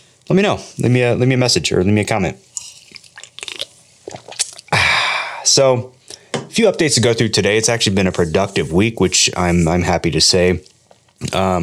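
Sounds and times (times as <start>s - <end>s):
speech: 0.3s - 2.5s, 5.6s - 11.6s
fizzy sparkling water bubbles hissing: 2.5s - 5.0s
person sipping orange mango sparkling water: 2.5s - 5.4s.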